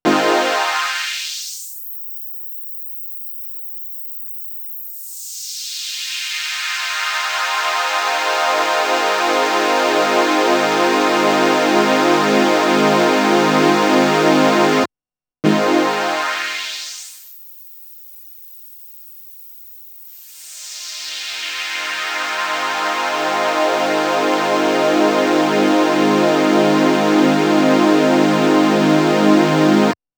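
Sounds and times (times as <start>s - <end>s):
Waldorf Blofeld synthesizer with opening and closing high-pass filter: 0.1s - 1.1s, 7.5s - 17.0s, 20.7s - 30.0s.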